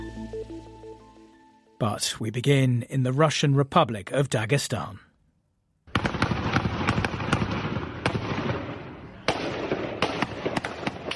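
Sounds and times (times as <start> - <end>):
speech: 1.8 - 5.1
gunfire from gunmen shooting on a street in a regional capital: 5.9 - 11.1.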